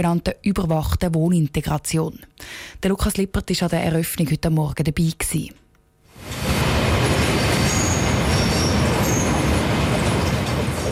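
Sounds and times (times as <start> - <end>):
speech: 0.0 - 5.6
train rolling past on railway tracks beside Langstrasse in Zurich Kreis 4: 6.1 - 10.9
faint high train wheel squeals: 7.1 - 10.5.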